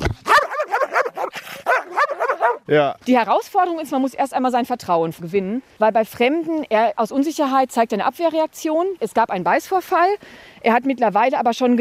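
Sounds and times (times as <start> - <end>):
energetic dog barking and yipping: 0.2 - 2.7
speech: 2.7 - 11.7.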